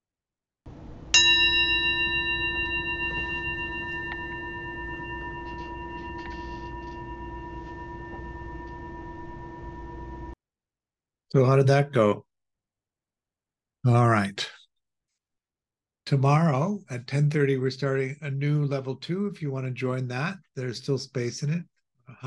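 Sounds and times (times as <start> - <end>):
meditation bell struck and ringing: 1.1 - 10.4
speech: 11.3 - 12.3, 13.8 - 14.5, 16.1 - 22.2.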